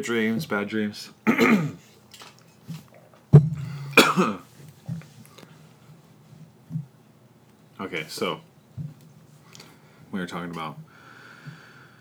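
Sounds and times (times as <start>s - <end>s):
speech: 0.0s - 1.9s, 4.2s - 4.4s, 7.9s - 8.5s, 10.1s - 10.9s
person coughing from a throat tickle: 1.3s - 1.8s, 3.5s - 4.4s.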